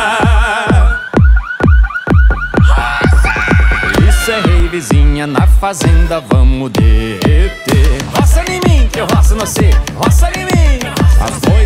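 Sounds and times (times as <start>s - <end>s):
loud steady bass thumps: 0.0s - 11.6s
pickup truck car alarms wailing and chirping: 0.2s - 5.3s
speech: 4.8s - 11.6s.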